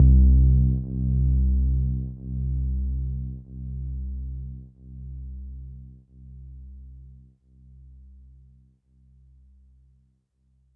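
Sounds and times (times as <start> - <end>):
sub bass note C2: 0.0 - 3.8.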